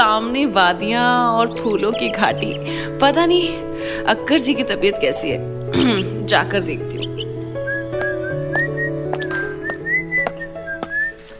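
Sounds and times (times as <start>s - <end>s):
speech: 0.1s - 7.2s
person whistling a light bouncing tune: 7.7s - 11.3s.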